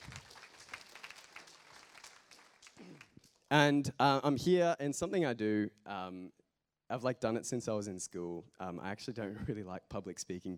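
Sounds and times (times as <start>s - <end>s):
room full of people clapping: 0.0s - 3.5s
speech: 3.5s - 10.5s.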